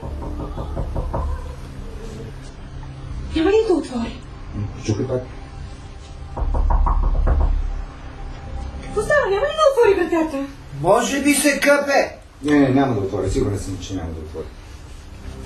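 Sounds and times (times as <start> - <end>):
firm knocks on a wooden door: 0.0 - 1.6, 6.3 - 7.9
speech: 3.4 - 4.2, 4.8 - 5.4, 9.3 - 14.6.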